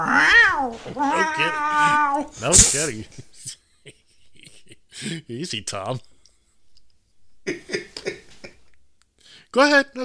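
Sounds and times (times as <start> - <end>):
cat meowing: 0.0 - 2.4
speech: 0.0 - 3.6, 5.0 - 6.1, 9.5 - 10.0.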